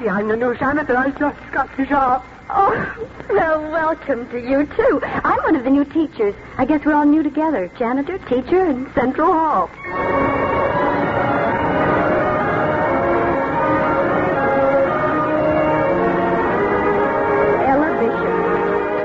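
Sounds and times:
speech: 0.0s - 10.4s
school bell ringing: 9.8s - 19.0s.

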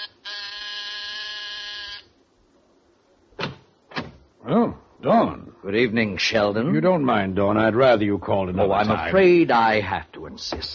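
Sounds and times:
apartment door buzzer: 0.0s - 2.1s
speech: 4.4s - 10.7s.

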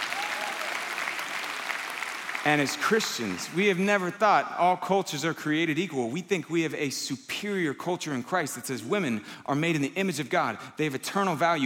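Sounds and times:
polite applause from an audience: 0.0s - 3.7s
speech: 2.4s - 11.6s.

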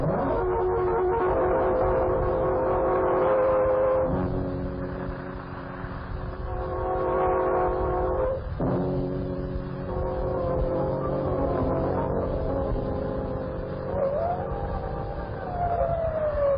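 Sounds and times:
sustained horn-like tones: 0.0s - 15.8s.

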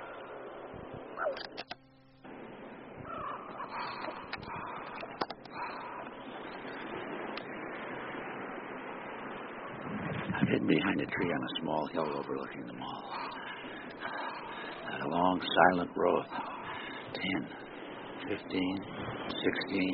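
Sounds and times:
flock of blackbirds calling overhead: 0.0s - 7.7s, 9.2s - 19.9s
sharper clicks: 1.3s - 1.9s
speech: 10.9s - 13.4s, 15.1s - 16.5s, 17.2s - 17.6s, 18.3s - 19.9s.

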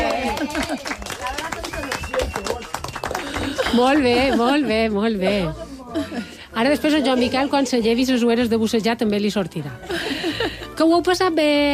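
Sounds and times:
laughter: 0.0s - 1.1s, 3.1s - 7.6s, 9.8s - 10.8s
crowd applauding: 0.0s - 4.4s
voices and chatter: 0.0s - 11.6s
speech: 3.7s - 10.0s, 10.8s - 11.7s.

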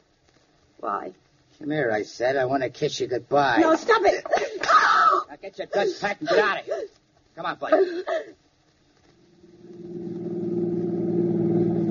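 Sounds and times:
speech: 0.8s - 8.4s
stolen car engine revving as the vehicle pulls away: 9.3s - 11.9s.

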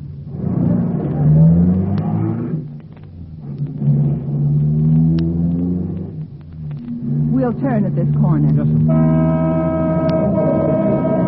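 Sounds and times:
car engine revving as the car is driven hard: 0.0s - 11.2s
speech: 7.4s - 9.8s.

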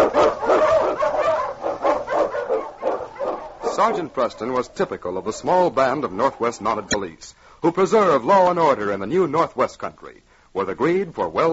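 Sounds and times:
husky sled dog barking and yelping in a snowstorm: 0.0s - 4.6s
speech: 3.8s - 11.5s.

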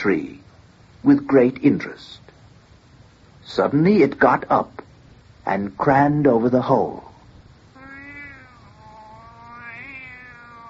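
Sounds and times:
speech: 0.0s - 2.2s, 3.5s - 4.8s, 5.4s - 7.1s
white tomcat meowing in an ash tree: 7.8s - 10.6s.

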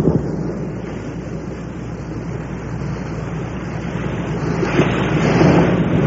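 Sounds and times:
Bering Sea waves breaking on a shore: 0.0s - 6.0s
wind rumble: 0.0s - 6.0s.

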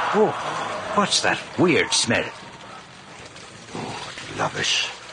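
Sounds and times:
speech: 0.1s - 2.4s, 4.4s - 5.0s
small brook trickling over stones: 2.1s - 5.1s.

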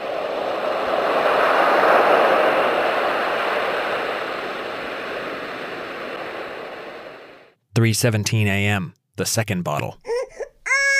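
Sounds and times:
ocean waves as baby sleep sounds: 0.0s - 7.6s
speech: 7.8s - 10.1s.

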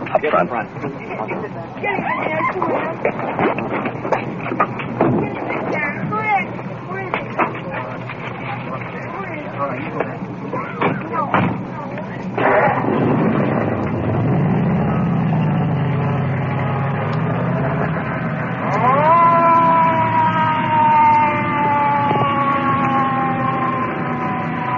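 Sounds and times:
rumbling traffic noise: 0.0s - 24.7s
speech: 0.1s - 3.8s
ambulance siren wailing: 14.8s - 24.7s.

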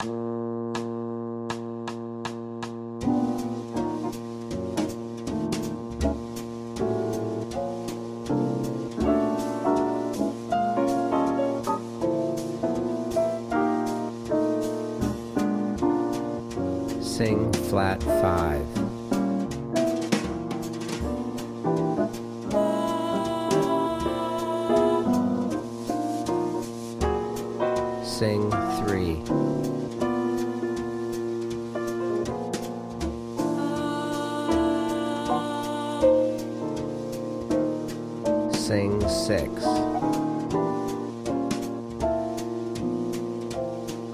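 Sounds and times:
rhythm piano in B flat: 0.0s - 44.1s
alto singing: 16.9s - 19.0s, 21.9s - 25.8s, 27.8s - 29.3s, 33.2s - 37.3s, 38.3s - 40.2s.

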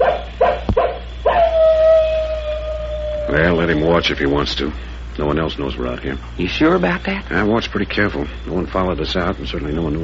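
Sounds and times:
wolf howling: 0.0s - 4.2s
speech: 3.3s - 10.0s.

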